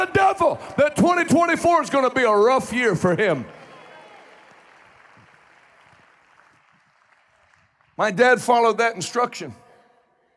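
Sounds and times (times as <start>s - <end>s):
speech: 0.0s - 3.6s, 8.0s - 9.6s
audience applause: 3.3s - 8.2s.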